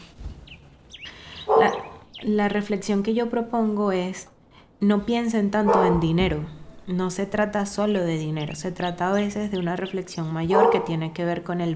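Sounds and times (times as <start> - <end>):
dog barking: 1.4 - 2.0, 5.7 - 6.1, 10.5 - 11.0
speech: 1.6 - 11.7.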